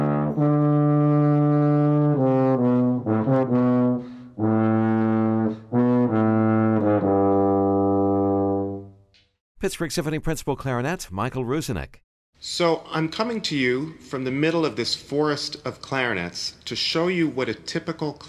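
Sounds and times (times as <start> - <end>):
tuba and second trombone playing an orchestral theme: 0.0 - 8.9
speech: 0.4 - 0.6, 9.7 - 18.2.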